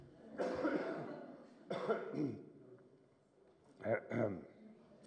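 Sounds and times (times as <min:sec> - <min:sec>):
person coughing harshly: 0:00.4 - 0:02.5, 0:04.1 - 0:04.4.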